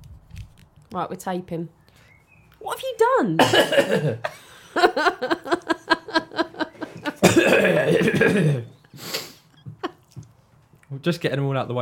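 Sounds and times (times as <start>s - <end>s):
speech: 0.9s - 1.8s, 2.6s - 6.6s, 7.5s - 9.1s, 10.9s - 11.8s
person fake coughing with raspy hacking: 3.4s - 4.2s, 7.2s - 8.7s
laughter: 4.0s - 8.6s.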